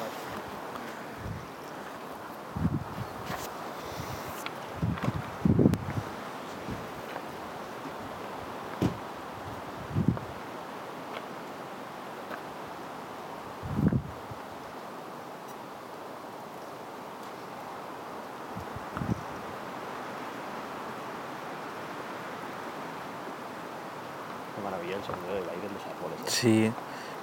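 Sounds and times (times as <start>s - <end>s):
wind rustling tree leaves: 0.0s - 27.2s
wind buffeting a phone's microphone: 0.5s - 1.6s, 2.5s - 3.4s, 4.0s - 7.1s, 8.8s - 10.4s, 13.6s - 14.4s, 18.5s - 19.5s
speech: 26.3s - 26.8s.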